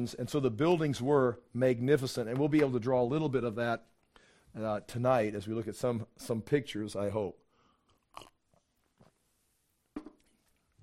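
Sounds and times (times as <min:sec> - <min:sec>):
speech: 0:00.0 - 0:07.4
person slurping water: 0:08.0 - 0:09.2.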